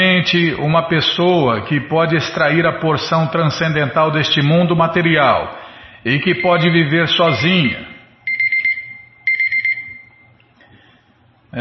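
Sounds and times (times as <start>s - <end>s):
speech: 0.2s - 7.9s
kitchen timer alarm beeping: 6.3s - 10.3s.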